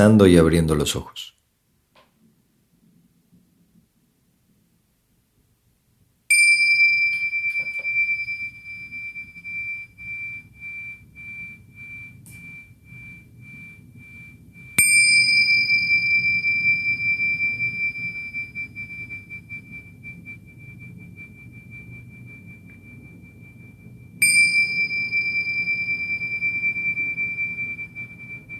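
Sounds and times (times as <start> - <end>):
speech: 0.0 - 1.4
bright bell struck to close a guided meditation: 6.3 - 20.7, 24.2 - 28.5.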